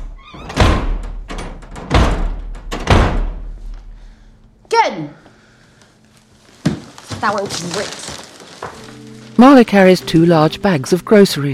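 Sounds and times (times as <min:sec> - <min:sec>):
door slamming shut: 0:00.0 - 0:03.9
speech: 0:04.8 - 0:05.2, 0:07.2 - 0:11.5.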